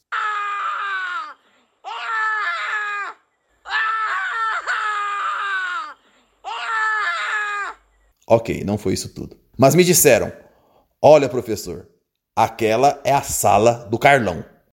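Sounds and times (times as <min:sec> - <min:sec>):
person screaming desperately: 0:00.0 - 0:07.8
speech: 0:08.3 - 0:10.4, 0:11.0 - 0:14.5.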